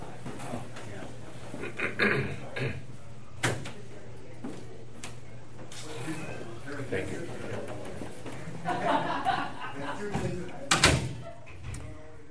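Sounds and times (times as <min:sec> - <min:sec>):
steady low room hum: 0:00.0 - 0:12.2
laughter: 0:08.4 - 0:11.6
door swinging shut with clicks and a knock: 0:10.7 - 0:11.8.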